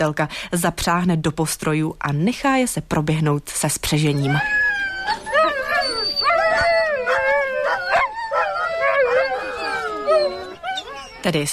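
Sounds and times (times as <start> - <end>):
speech: 0.0 - 5.2, 11.2 - 11.5
pack of husky dogs howling: 4.2 - 11.5
husky dogs barking: 5.1 - 11.3.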